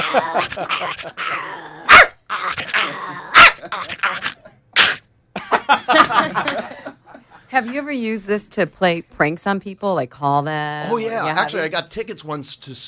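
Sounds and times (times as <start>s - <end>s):
laughter: 0.0s - 1.2s, 5.4s - 7.5s
person imitating a long-haired Chihuahua barking and growling: 0.0s - 5.0s
speech: 0.1s - 1.5s, 7.5s - 12.8s.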